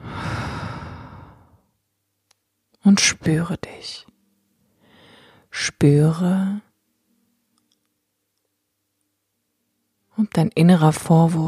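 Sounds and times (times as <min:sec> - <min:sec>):
deep breathy exhale during a guided meditation: 0:00.0 - 0:01.6, 0:04.8 - 0:05.5
speech: 0:02.8 - 0:04.1, 0:05.5 - 0:06.7, 0:10.2 - 0:11.4.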